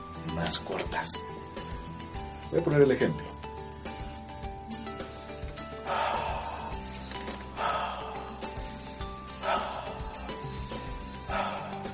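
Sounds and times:
speech: 0:00.4 - 0:01.8, 0:02.5 - 0:03.3
slow breathing in through nose and out through mouth: 0:04.7 - 0:11.9.

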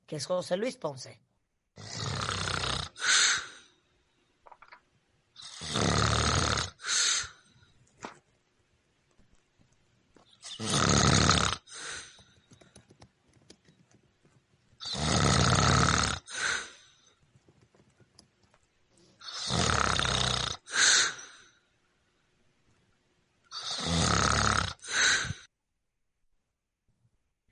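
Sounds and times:
speech: 0:00.1 - 0:01.9
sleeping man snoring: 0:01.8 - 0:03.6, 0:05.4 - 0:07.4, 0:10.4 - 0:12.2, 0:14.8 - 0:16.8, 0:19.2 - 0:21.4, 0:23.5 - 0:25.5.

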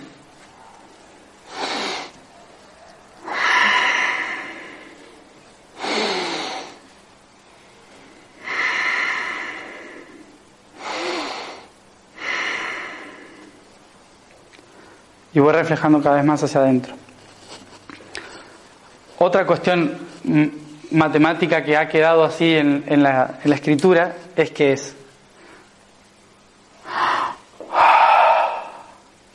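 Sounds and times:
loud deliberate breaths demonstrating the letter H as an ah breath: 0:01.4 - 0:02.2, 0:03.1 - 0:13.8, 0:14.6 - 0:15.3, 0:25.2 - 0:26.0, 0:26.7 - 0:29.2
speech: 0:15.4 - 0:17.0, 0:19.2 - 0:25.0.

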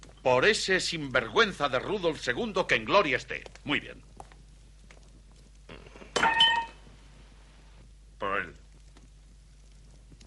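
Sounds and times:
speech: 0:00.2 - 0:04.1
glasses clinking together in a toast: 0:06.1 - 0:06.8.

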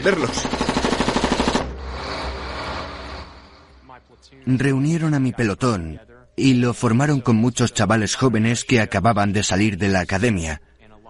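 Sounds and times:
speech: 0:00.0 - 0:00.7, 0:04.2 - 0:10.7
automatic gunfire: 0:00.3 - 0:01.7.

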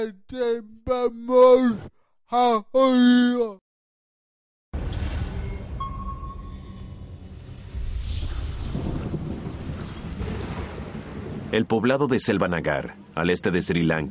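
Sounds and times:
speech: 0:00.0 - 0:03.6, 0:11.5 - 0:14.0
deep rumble: 0:04.8 - 0:11.6
faint tonal chirps: 0:05.1 - 0:08.7
torrential monsoon rain: 0:07.7 - 0:11.6.

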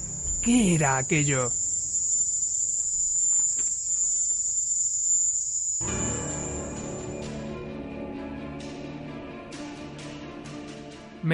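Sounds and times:
Cuban cicada chirring: 0:00.0 - 0:07.4
speech: 0:00.4 - 0:01.6.

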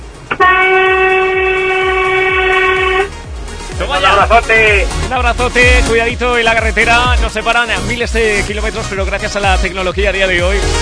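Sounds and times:
train horn blast: 0:00.3 - 0:03.3
speech: 0:04.2 - 0:10.8.

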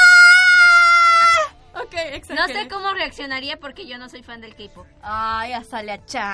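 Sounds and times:
person shrieking high-pitched, imitating an excited fan's scream: 0:00.0 - 0:01.5
speech: 0:02.2 - 0:06.3.

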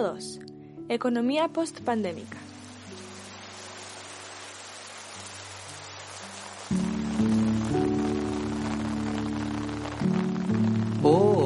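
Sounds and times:
speech: 0:00.0 - 0:02.5
steady rain falling: 0:01.8 - 0:11.4.

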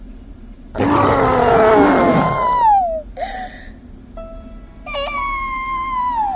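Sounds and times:
monster's loud rumbling roar: 0:00.8 - 0:02.7
shorter high-pitched wails and shrieks: 0:00.8 - 0:03.0, 0:04.9 - 0:06.3.

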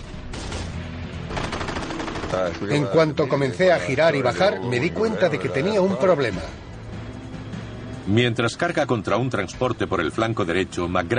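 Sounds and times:
heavy Japanese anti-aircraft gunfire aimed at US Navy SBD dive bombers in World War II: 0:00.0 - 0:02.6
speech: 0:02.3 - 0:06.6, 0:08.1 - 0:11.1.

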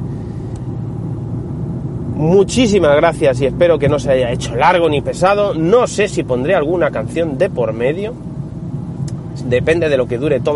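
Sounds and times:
car engine rumble in a moving car's cabin: 0:00.0 - 0:10.5
road hum in a moving car: 0:00.0 - 0:10.5
speech: 0:02.2 - 0:08.3, 0:09.4 - 0:10.5.

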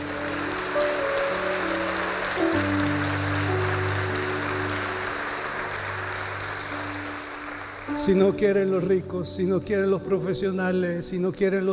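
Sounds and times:
crowd applauding in a reverberant hall: 0:00.0 - 0:08.8
sustained organ-like chords: 0:00.0 - 0:10.6
speech: 0:08.0 - 0:11.7.

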